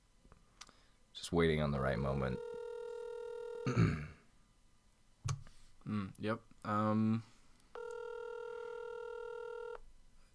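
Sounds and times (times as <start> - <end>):
speech: 1.3 - 2.6, 6.0 - 7.3
telephone ringing with a steady electronic tone: 2.3 - 3.8, 7.8 - 9.8.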